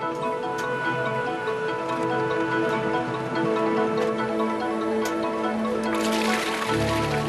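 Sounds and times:
factory machinery humming: 0:00.0 - 0:07.2
hot liquid paraffin wax with red pigment pouring into a bucket: 0:05.9 - 0:07.2.

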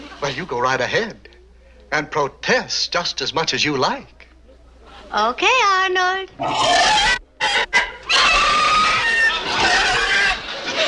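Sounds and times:
speech: 0:00.2 - 0:01.3, 0:01.9 - 0:04.2, 0:05.1 - 0:07.2
pig squealing: 0:06.4 - 0:10.8.

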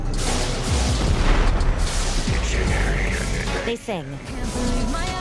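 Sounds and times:
car explosion: 0:00.2 - 0:03.5
crackling debris: 0:00.2 - 0:03.6
speech: 0:03.8 - 0:05.1.

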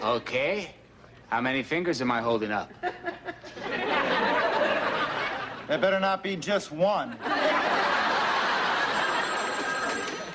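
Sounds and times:
speech: 0:00.0 - 0:03.0, 0:05.7 - 0:07.7
laughter: 0:02.7 - 0:06.0, 0:07.0 - 0:10.3
telephone ringing: 0:08.3 - 0:10.3.

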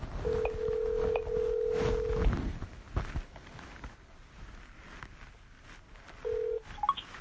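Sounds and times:
cell phone call ringback tone: 0:00.2 - 0:02.3, 0:06.2 - 0:07.0.

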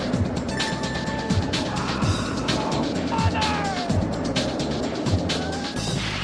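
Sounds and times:
roller coaster heavy rumbling roar: 0:00.0 - 0:06.2
faint shouts of roller coaster riders: 0:01.6 - 0:04.0, 0:05.3 - 0:05.8.

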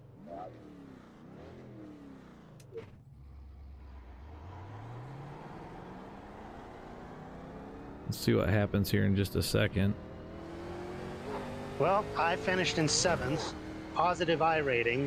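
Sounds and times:
car engine revving in a racing video game: 0:00.0 - 0:15.0
speech: 0:08.1 - 0:10.0, 0:11.8 - 0:15.0.

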